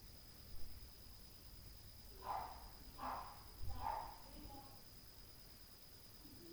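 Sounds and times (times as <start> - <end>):
dog noise on a street or floor at night: 2.2 - 4.2.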